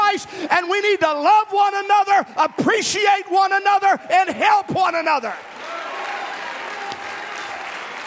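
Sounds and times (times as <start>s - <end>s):
speech: 0.2s - 5.6s
congregation clapping hands at a church service: 5.3s - 8.0s.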